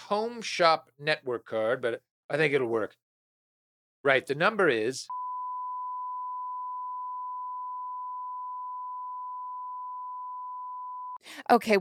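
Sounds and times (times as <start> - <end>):
speech: 0.1 - 3.0, 4.0 - 5.2, 11.5 - 11.7
steady telephone tone during a call to the phone company: 5.1 - 11.2.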